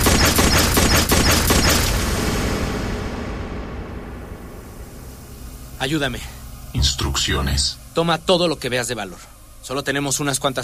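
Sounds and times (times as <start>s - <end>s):
pistol firing in a quick volley: 0.0s - 2.1s
noisy rumbling decay: 1.5s - 8.4s
speech: 5.8s - 10.6s.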